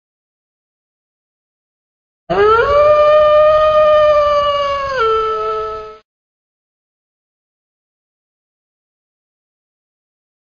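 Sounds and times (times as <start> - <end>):
wolf howling: 2.3 - 6.0.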